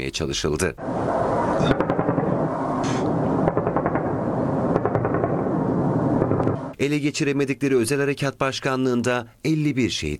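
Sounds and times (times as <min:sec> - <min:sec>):
speech: 0:00.0 - 0:01.9, 0:06.8 - 0:10.1
constant roaring background: 0:00.8 - 0:06.8
sonic booms from low-flying F-16 jets over Ankara: 0:00.8 - 0:06.8.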